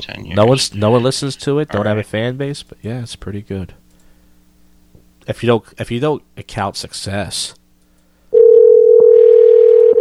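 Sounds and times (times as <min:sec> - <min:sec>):
speech: 0:00.0 - 0:03.8, 0:05.3 - 0:07.6
telephone ringing on an incoming call: 0:08.4 - 0:09.9.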